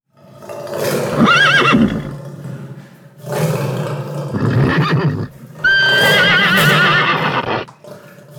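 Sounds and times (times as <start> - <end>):
horse neighing: 0.9 - 2.2, 4.3 - 7.7
lion roaring: 1.1 - 2.2, 4.3 - 7.7.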